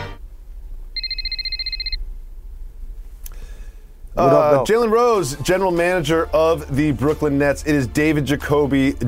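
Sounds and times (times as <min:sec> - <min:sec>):
electronic telephone ring: 0:01.0 - 0:02.0
speech: 0:04.2 - 0:09.0.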